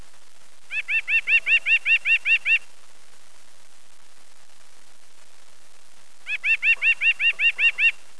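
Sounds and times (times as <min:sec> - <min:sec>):
White-breasted Nuthatch calling: 0:00.7 - 0:02.7, 0:06.2 - 0:08.0.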